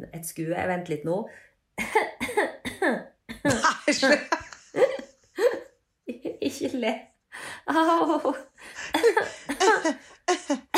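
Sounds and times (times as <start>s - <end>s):
speech: 0.0s - 4.9s, 6.5s - 7.1s, 7.7s - 10.0s
person coughing to clear the throat: 2.0s - 5.7s, 8.8s - 10.7s
laughter: 3.5s - 5.5s, 7.8s - 10.7s.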